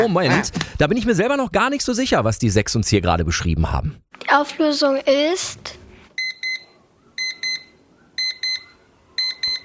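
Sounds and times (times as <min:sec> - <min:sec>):
speech: 0:00.0 - 0:05.8
kitchen timer alarm double beeps of bright electronic tones: 0:06.2 - 0:06.6, 0:07.2 - 0:09.6.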